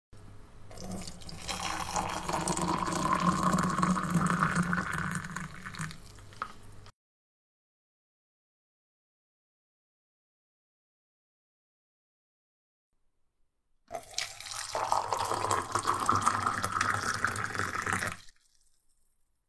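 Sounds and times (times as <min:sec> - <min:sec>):
pouring tea or coffee in kitchen: 0:00.7 - 0:06.6, 0:13.9 - 0:18.8.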